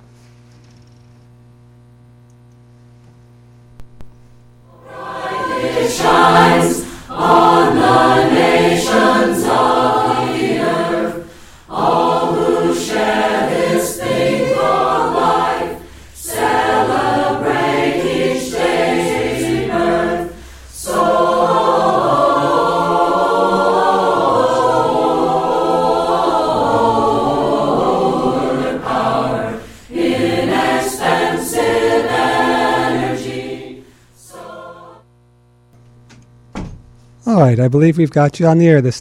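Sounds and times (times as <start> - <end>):
carol-style song playing: 4.7 - 33.7
speech: 37.6 - 38.9.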